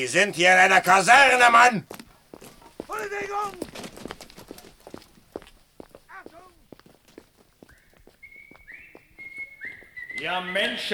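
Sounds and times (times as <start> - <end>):
speech: 0.0 - 2.0, 10.2 - 10.9
heavy footsteps stomping along a barracks corridor: 1.9 - 10.0
high whistled tone: 7.7 - 10.9.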